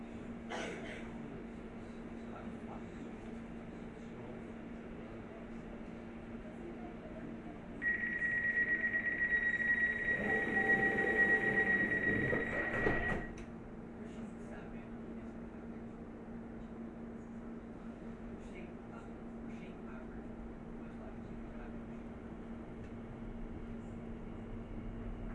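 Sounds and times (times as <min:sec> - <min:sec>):
low rumble inside a passenger train carriage: 0:00.0 - 0:25.3
high electronic door-warning tone in a passenger train: 0:07.8 - 0:13.4
passenger train sliding doors swishing and clattering: 0:12.1 - 0:13.3.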